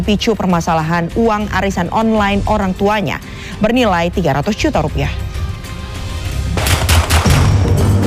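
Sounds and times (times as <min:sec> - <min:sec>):
speech: 0:00.0 - 0:05.3
warning gunshots fired into the air: 0:06.6 - 0:07.9.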